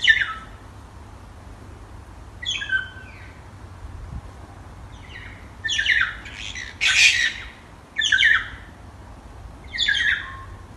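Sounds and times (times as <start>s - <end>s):
small birds singing at night on a mountain in New Zealand: 0.0s - 0.6s, 2.4s - 3.4s, 4.9s - 8.7s, 9.6s - 10.7s.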